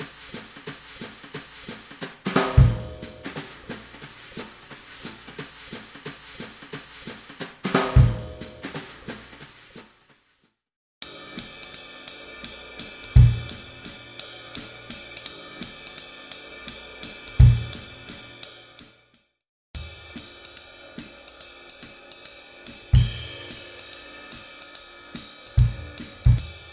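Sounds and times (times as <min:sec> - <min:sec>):
jazz music: 0:00.0 - 0:09.3, 0:11.2 - 0:18.4, 0:22.7 - 0:26.7.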